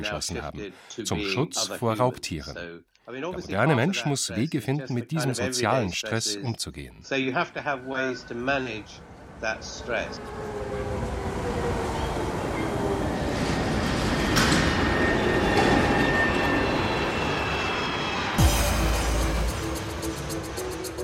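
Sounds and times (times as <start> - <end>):
speech: 0.0 - 11.6
subway train rumbling with whining squeals: 7.6 - 21.0.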